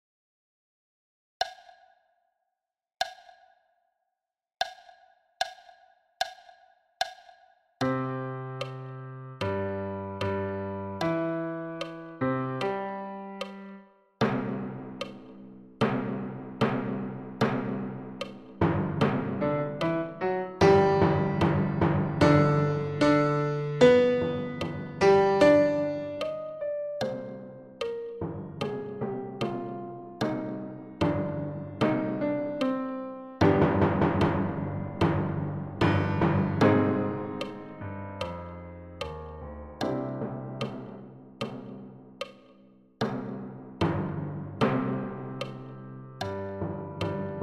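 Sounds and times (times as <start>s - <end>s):
piano: 7.8s - 42.0s, 43.8s - 47.4s.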